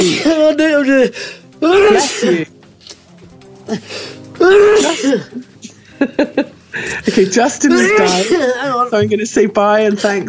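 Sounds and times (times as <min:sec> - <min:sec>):
speech: 0:00.0 - 0:02.5, 0:03.7 - 0:10.2
person sneezing: 0:01.7 - 0:02.5, 0:04.4 - 0:05.4, 0:07.8 - 0:08.6.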